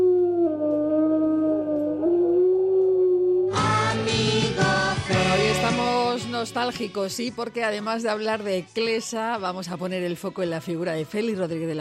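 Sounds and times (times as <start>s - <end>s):
wolf howling: 0.0s - 3.6s
loud music: 3.5s - 9.8s
speech: 6.4s - 11.7s.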